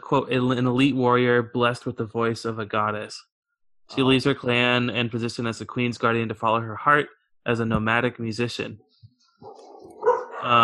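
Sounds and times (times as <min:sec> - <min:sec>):
speech: 0:00.1 - 0:03.3, 0:03.9 - 0:09.6, 0:10.4 - 0:10.6
dog yapping barks: 0:09.4 - 0:10.6.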